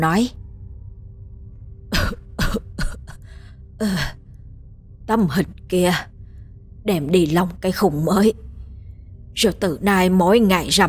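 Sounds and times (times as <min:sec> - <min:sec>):
speech: 0:00.0 - 0:00.4, 0:03.8 - 0:04.2, 0:05.1 - 0:06.1, 0:06.8 - 0:08.4, 0:09.4 - 0:10.8
old man coughing while clutching his chest: 0:01.9 - 0:03.2.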